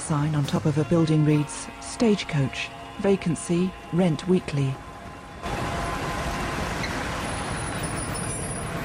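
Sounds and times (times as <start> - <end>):
speech: 0.1 - 5.6
road noise: 1.2 - 8.8
plumbing van engine rumbling while driving: 4.7 - 8.8.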